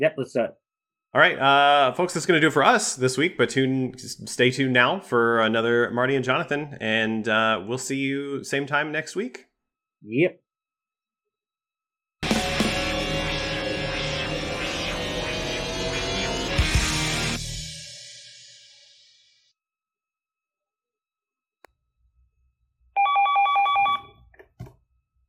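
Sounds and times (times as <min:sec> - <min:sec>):
speech: 0:00.0 - 0:10.4
loud dense musical burst: 0:12.2 - 0:17.8
short electronic telephone ring: 0:23.0 - 0:24.2.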